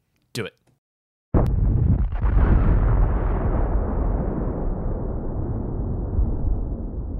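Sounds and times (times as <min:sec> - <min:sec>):
speech: 0:00.4 - 0:00.6
explosion: 0:01.4 - 0:07.1.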